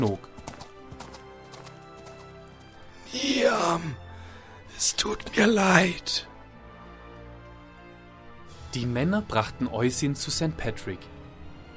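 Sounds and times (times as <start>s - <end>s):
speech: 0.0s - 0.3s, 4.8s - 6.3s, 8.7s - 11.1s
horse hooves galloping: 0.0s - 3.1s.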